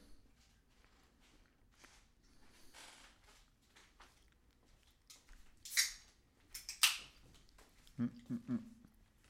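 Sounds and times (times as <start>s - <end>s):
can of sparkling water being cracked open: 5.7s - 6.0s, 6.6s - 7.1s
speech: 8.0s - 8.8s.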